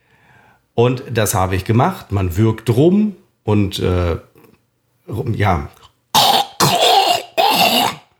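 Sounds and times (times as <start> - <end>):
speech: 0.8 - 4.3, 5.1 - 5.9
person hawking up phlegm from deep in the throat for a corona test sample: 6.2 - 8.1.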